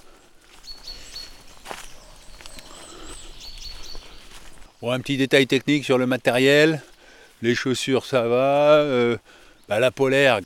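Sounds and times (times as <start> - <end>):
birds singing around a meadow path: 0.0 - 10.4
crunch like a footstep: 0.0 - 10.4
soft breeze over a meadow: 0.0 - 10.4
speech: 4.8 - 10.4.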